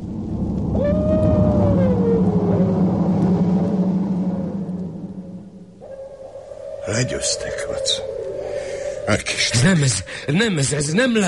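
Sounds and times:
steady low rumble of wind-like noise: 0.0s - 11.2s
dog howling: 0.7s - 3.2s, 5.8s - 9.4s
speech: 7.0s - 8.1s, 9.1s - 11.2s.

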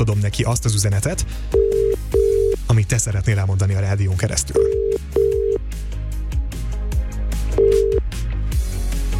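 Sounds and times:
speech: 0.0s - 2.0s, 2.8s - 5.2s
music with a beat: 1.1s - 3.0s, 4.4s - 9.1s
phone ringing tone as a radio host calls a number: 1.6s - 2.6s, 4.6s - 5.6s, 7.6s - 8.0s.

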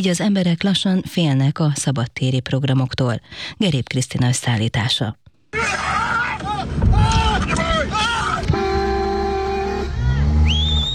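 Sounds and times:
speech: 0.0s - 6.0s
people shouting loudly and urgently: 5.5s - 10.5s
car horns honking: 8.1s - 10.9s.

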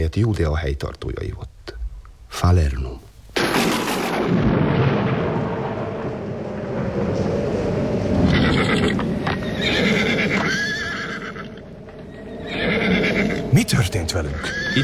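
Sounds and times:
speech: 0.0s - 1.5s, 2.3s - 4.6s, 13.6s - 14.8s
deep continuous thunder rumbling: 3.4s - 14.8s
horses whinnying and neighing: 8.2s - 13.5s, 14.2s - 14.8s.

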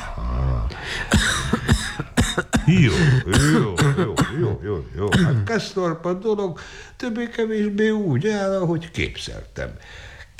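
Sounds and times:
patient throaty coughing and hacking: 0.0s - 5.6s
patient coughing during a medical examination: 0.9s - 5.5s
speech: 2.7s - 10.3s.

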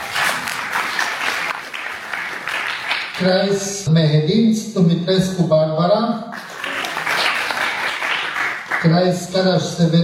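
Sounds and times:
crowd applauding: 0.0s - 3.3s, 6.4s - 9.2s
speech: 3.2s - 6.5s, 8.8s - 10.0s.

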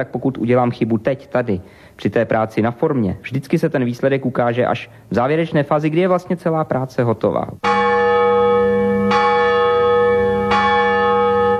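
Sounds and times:
speech: 0.0s - 7.8s
large cast bronze bell ringing: 7.6s - 11.5s.

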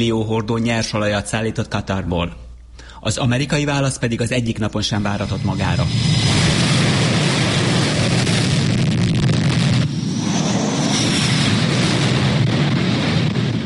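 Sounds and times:
speech: 0.0s - 6.3s
fighter jets roaring while taking off from aircraft carriers: 4.9s - 13.6s.

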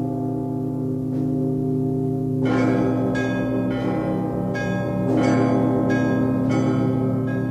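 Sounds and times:
Lutheran church bells pealing: 0.0s - 7.4s.

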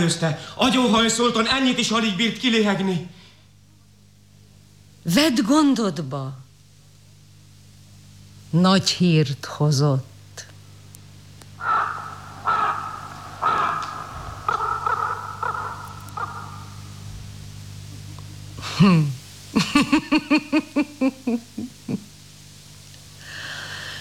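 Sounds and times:
speech: 0.0s - 3.2s, 5.0s - 6.4s, 8.5s - 10.5s, 18.8s - 22.1s
raven croaking: 11.6s - 18.3s
laughter: 17.9s - 22.1s.

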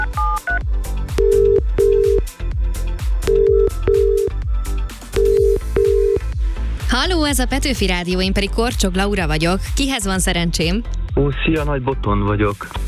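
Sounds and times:
telephone touch-tone dialing of a phone number: 0.0s - 0.6s, 1.2s - 2.2s, 3.3s - 4.3s, 5.2s - 6.2s
steady rhythmic beat: 0.0s - 11.7s
speech: 7.0s - 12.8s.

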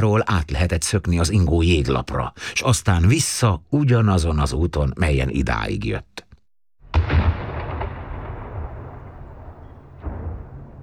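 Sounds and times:
speech: 0.0s - 6.2s
cannon boom signalling moving ice on the Danube: 6.8s - 10.8s.

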